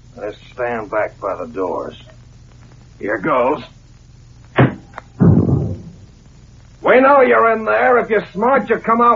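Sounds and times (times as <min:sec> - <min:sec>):
speech: 0:00.2 - 0:02.2, 0:03.0 - 0:03.8, 0:06.9 - 0:09.1
tear gas bomb burst of broadband noise: 0:04.4 - 0:06.9
tear gas bomb landing with a heavy thump: 0:04.6 - 0:06.1.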